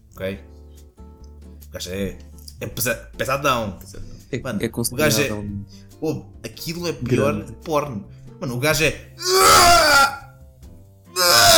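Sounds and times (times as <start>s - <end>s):
speech: 0.2s - 0.6s, 1.7s - 9.9s
person imitating a weightlifter's straining grunt at a gym: 9.2s - 10.2s, 11.2s - 11.5s.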